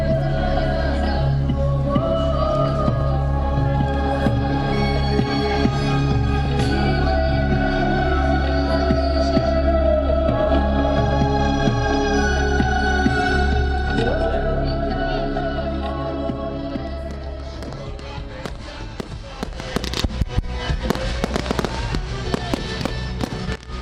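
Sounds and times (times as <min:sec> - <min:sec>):
sustained low musical drone: 0:00.0 - 0:23.7
fireworks exploding over a reservoir during a Kupala Night celebration: 0:17.1 - 0:23.7.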